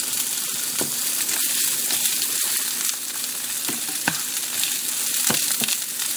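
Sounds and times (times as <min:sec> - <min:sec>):
onion sizzling in a hot pan as it is tossed around: 0:00.0 - 0:06.1.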